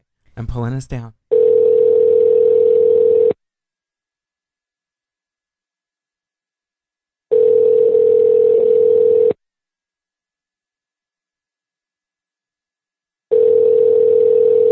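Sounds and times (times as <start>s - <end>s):
speech: 0.4s - 1.2s
outgoing phone call ringback tone to a cell phone: 1.3s - 3.4s, 7.3s - 9.4s, 13.3s - 14.7s.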